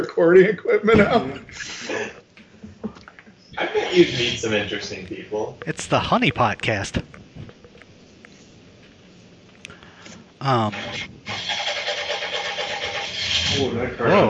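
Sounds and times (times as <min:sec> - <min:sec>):
speech: 0:00.0 - 0:02.2, 0:03.6 - 0:07.2, 0:10.4 - 0:11.1, 0:13.5 - 0:14.2
muscle car engine starting, idling roughly and revving: 0:11.4 - 0:13.7.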